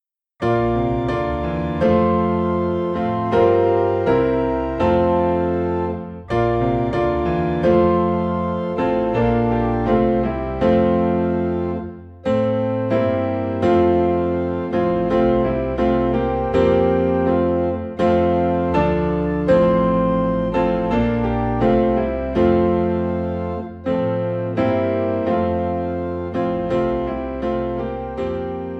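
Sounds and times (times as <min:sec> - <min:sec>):
piano playing a Christmas carol in F: 0:00.0 - 0:28.7.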